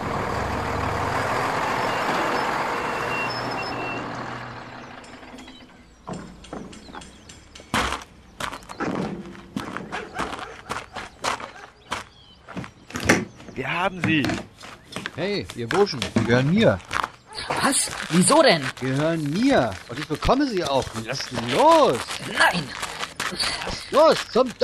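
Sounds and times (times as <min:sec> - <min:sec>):
truck engine rumbling as it arrives: 0:00.0 - 0:24.6
sharp mechanical clicks and knocks: 0:05.0 - 0:08.1
speech: 0:13.8 - 0:14.5, 0:15.2 - 0:16.9, 0:17.6 - 0:24.6.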